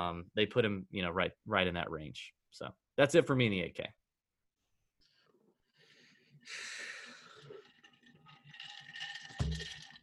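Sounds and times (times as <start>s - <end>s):
speech: 0.0s - 4.0s, 6.4s - 6.7s
ice cubes rattling and clinking inside an insulated tumbler: 7.4s - 10.0s
low thud of a cup being set down: 9.4s - 9.8s.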